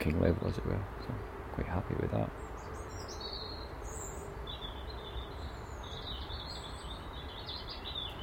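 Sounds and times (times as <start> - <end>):
speech: 0.0 - 2.6
birds chirping and trilling outdoors in the morning: 0.0 - 8.2.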